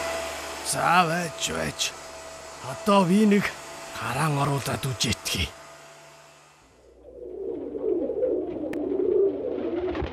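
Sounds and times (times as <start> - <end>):
speech: 0.7 - 2.0, 2.6 - 5.6
pigeon cooing: 7.1 - 10.1.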